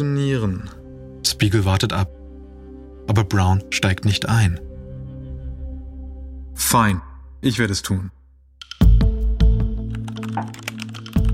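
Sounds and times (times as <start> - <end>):
speech: 0.0 - 0.8, 1.4 - 2.2, 3.1 - 4.7, 6.6 - 8.2, 10.4 - 10.6
keys clacking on a computer keyboard writing a message: 9.9 - 11.3.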